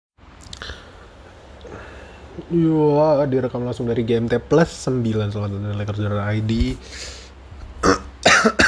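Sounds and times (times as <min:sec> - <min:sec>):
speech: 0:02.4 - 0:07.2
person coughing: 0:07.8 - 0:08.6.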